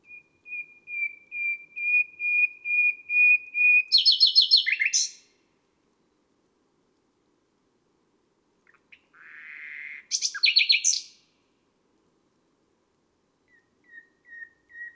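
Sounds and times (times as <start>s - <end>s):
common nightingale singing: 0.0s - 5.3s, 8.7s - 11.3s, 13.4s - 14.9s.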